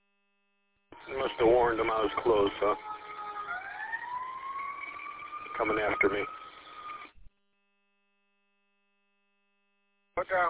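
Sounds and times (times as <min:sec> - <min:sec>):
emergency vehicle siren wailing while passing in traffic: 0:01.0 - 0:07.2
speech: 0:01.1 - 0:02.9, 0:05.6 - 0:06.4, 0:10.2 - 0:10.4.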